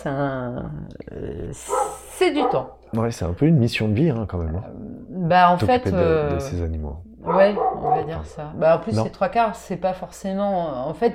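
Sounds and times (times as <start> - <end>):
speech: 0.0 - 11.1
dog barking in short sharp yaps: 1.7 - 2.8, 7.2 - 8.4.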